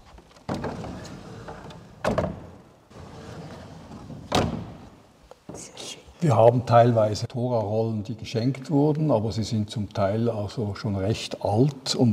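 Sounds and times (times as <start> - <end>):
Torah ark wooden doors being opened in a synagogue: 0.2 - 2.7, 3.9 - 5.6
speech: 6.2 - 12.1.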